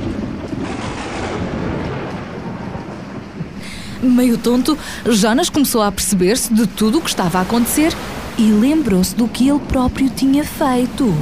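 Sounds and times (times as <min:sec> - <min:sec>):
deep rumbling thunder at sea: 0:00.0 - 0:06.1
hissing rain at sea: 0:00.0 - 0:11.1
strong wind in a storm at sea: 0:00.0 - 0:11.1
speech: 0:04.0 - 0:11.1.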